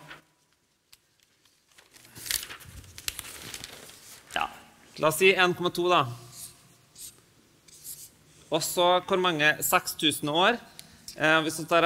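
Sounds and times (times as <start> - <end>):
paper page turning with crisp crinkling: 0.0 - 4.4
speech: 5.0 - 6.2, 8.5 - 11.8.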